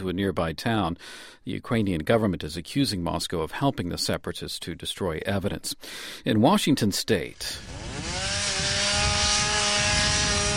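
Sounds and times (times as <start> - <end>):
speech: 0.0 - 8.3
chainsaw cutting brush to clear wildfire fuel in Washington state: 7.3 - 10.5.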